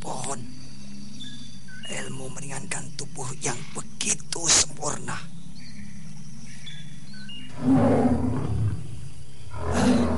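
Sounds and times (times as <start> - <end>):
speech: 2.3 - 5.4
tiger roaring with a deep rumbling growl: 7.5 - 10.1.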